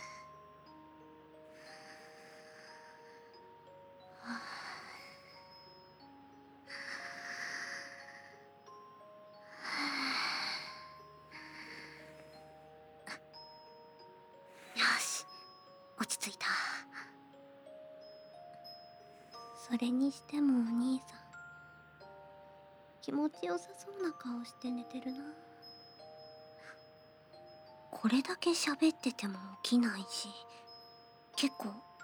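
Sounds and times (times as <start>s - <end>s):
faint music: 0.0s - 32.0s
nervous woman taking slow deep calming breaths: 1.5s - 3.5s, 4.1s - 5.8s, 6.7s - 8.8s, 9.4s - 13.5s, 14.4s - 15.6s
speech: 19.7s - 21.2s, 23.1s - 25.4s, 28.0s - 30.6s, 31.4s - 31.9s.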